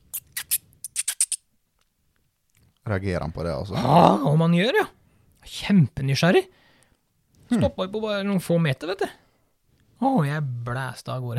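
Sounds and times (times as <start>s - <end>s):
person imitating a mouse with squeaky lip-smacks to lure a stoat: 0.1s - 1.4s
speech: 2.9s - 6.6s, 7.5s - 9.2s, 10.0s - 11.3s.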